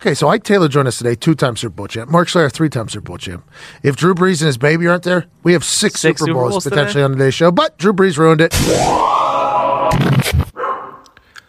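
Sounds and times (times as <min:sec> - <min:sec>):
speech: 0:00.0 - 0:10.4
small dog barking inside a house: 0:10.6 - 0:11.0.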